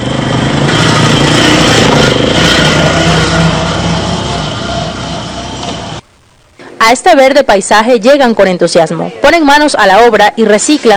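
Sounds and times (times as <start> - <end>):
small motor scooter engine droning while riding along: 0.0 - 6.0
speech: 6.9 - 10.9.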